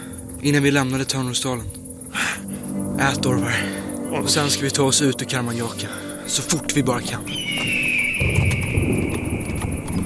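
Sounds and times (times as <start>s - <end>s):
constant hum: 0.0s - 10.0s
speech: 0.4s - 1.8s, 3.0s - 7.8s
horses' hooves clip-clopping as riders travel on horseback in a drama: 7.4s - 10.0s.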